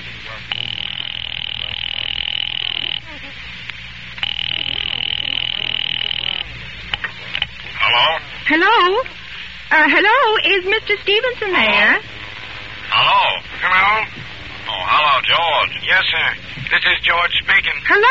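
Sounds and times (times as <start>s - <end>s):
brief warbling telephone tones: 0.2s - 16.5s
telephone line ringing through the earpiece: 0.5s - 3.1s, 4.2s - 6.5s
speech: 8.5s - 12.1s, 15.0s - 18.1s.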